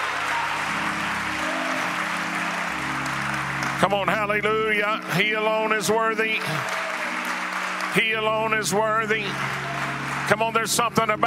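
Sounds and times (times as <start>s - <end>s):
congregation applauding: 0.0s - 11.2s
speech: 3.8s - 6.8s, 7.9s - 11.2s.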